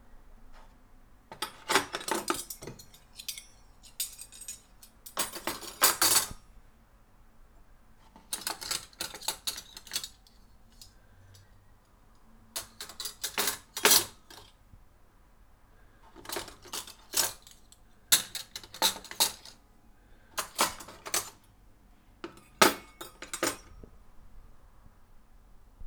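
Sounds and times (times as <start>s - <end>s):
cutlery clinking: 1.3s - 6.4s, 8.2s - 10.9s, 12.6s - 14.6s, 16.2s - 19.6s, 20.4s - 21.4s, 22.3s - 23.8s.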